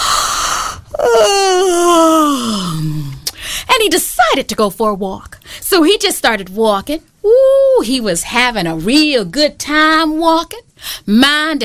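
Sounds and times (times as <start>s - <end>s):
storyteller acting out a stretching yawn: 0.0s - 3.3s
speech: 3.9s - 11.6s.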